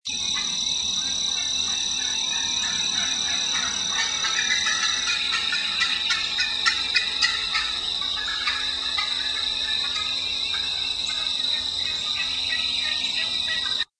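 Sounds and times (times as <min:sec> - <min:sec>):
turkey flying down and cackling: 0:00.4 - 0:13.9.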